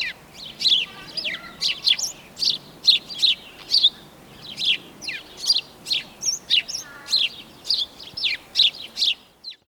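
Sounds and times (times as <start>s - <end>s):
house sparrow chirping: 0.0s - 9.6s.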